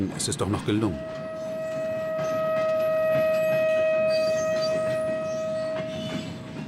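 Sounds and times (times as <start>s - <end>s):
speech: 0.0s - 1.3s
faint rhythmic clatter of train on rails: 0.0s - 6.6s
train rumbling on rails: 0.0s - 6.6s
sustained high whistling tone: 0.8s - 6.6s.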